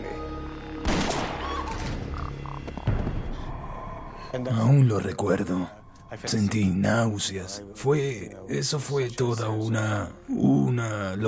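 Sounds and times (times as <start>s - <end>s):
gunshots fired at a person at the door of an airplane: 0.8s - 2.0s
speech: 4.3s - 11.2s.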